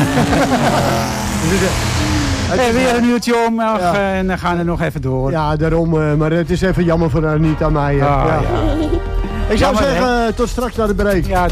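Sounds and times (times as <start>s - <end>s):
laughter: 0.0s - 1.9s, 8.0s - 10.5s
race car speeding past: 0.0s - 3.3s
speech: 0.2s - 11.5s.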